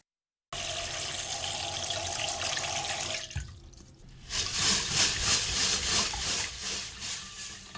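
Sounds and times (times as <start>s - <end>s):
water running from a tap: 0.6s - 7.7s
rice being washed in a strainer with rhythmic swishing: 4.0s - 7.7s.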